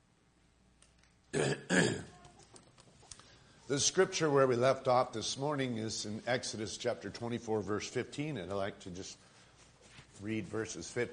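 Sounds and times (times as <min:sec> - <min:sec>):
speech: 0:01.3 - 0:02.0, 0:03.7 - 0:09.3, 0:10.2 - 0:11.1
throat clearing to shift a lozenge: 0:01.3 - 0:02.2.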